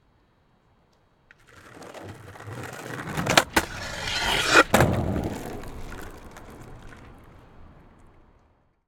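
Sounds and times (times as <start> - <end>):
skateboard jump: 1.3 - 8.2.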